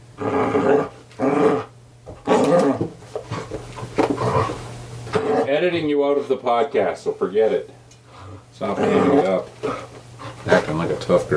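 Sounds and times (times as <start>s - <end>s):
puppy growling: 0.2s - 5.7s, 8.1s - 10.9s
speech: 5.6s - 7.8s, 8.6s - 9.9s, 10.5s - 11.3s.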